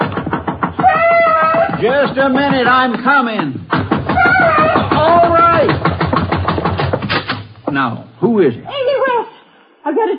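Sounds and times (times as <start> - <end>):
urgent knocking on a house door at night: 0.0 - 7.4
speech: 1.8 - 3.6, 4.4 - 5.8, 7.7 - 9.3, 9.9 - 10.1.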